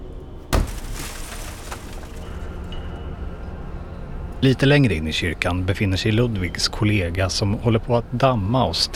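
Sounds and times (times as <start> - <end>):
heavy booming thud with crunchy smash: 0.5 - 2.2
dense rumbling clatter: 0.6 - 3.1
speech: 4.4 - 8.9.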